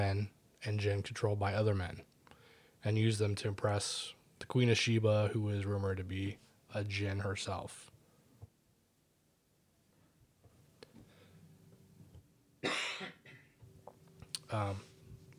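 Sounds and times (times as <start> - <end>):
speech: 0.0 - 2.1, 2.8 - 7.9, 14.5 - 14.9
person with a cold coughing: 12.6 - 13.5
throat clearing: 12.6 - 13.5.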